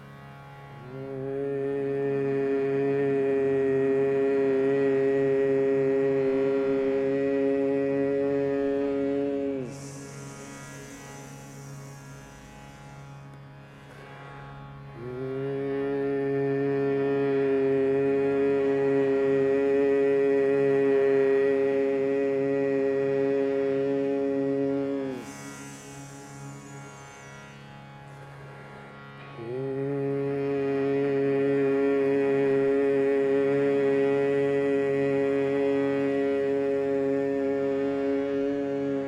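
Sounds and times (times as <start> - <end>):
person chanting sustained tone: 0.0 - 11.9, 14.6 - 27.5, 29.3 - 39.0
person humming one low pitch: 0.9 - 10.2, 15.0 - 25.4, 29.4 - 39.0
audible breath: 9.7 - 14.6, 25.2 - 28.8.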